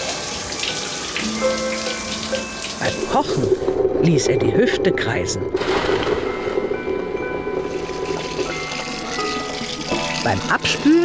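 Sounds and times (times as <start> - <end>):
shower water running: 0.0 - 3.8, 7.4 - 11.0
speech: 1.2 - 6.1, 10.3 - 11.0.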